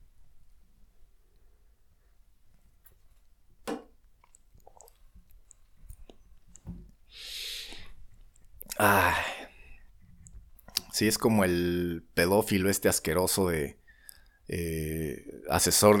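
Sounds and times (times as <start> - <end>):
mouth clicks and swallows: 4.0 - 11.0
person sipping coffee: 4.1 - 11.0
airy slurp: 4.2 - 6.6
speech: 8.8 - 9.3, 11.0 - 13.8, 14.5 - 15.9.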